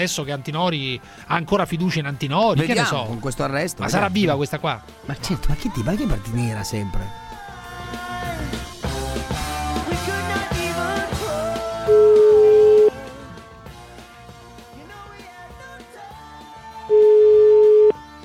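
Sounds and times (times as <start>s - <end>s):
speech: 0.0s - 7.2s
music: 0.0s - 18.2s
telephone ringback tone while placing a call: 11.9s - 12.9s, 16.9s - 18.0s.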